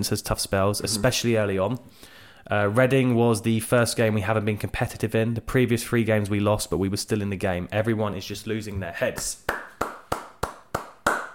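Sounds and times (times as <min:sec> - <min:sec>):
speech: 0:00.0 - 0:09.5
sharp hand claps: 0:09.2 - 0:11.3.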